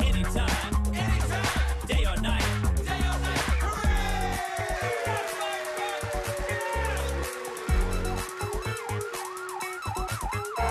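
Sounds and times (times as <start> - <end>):
bouncy musical beat with steady bass and drums: 0.0 - 10.6
fire truck siren wailing in rising and falling sweeps: 4.5 - 10.6.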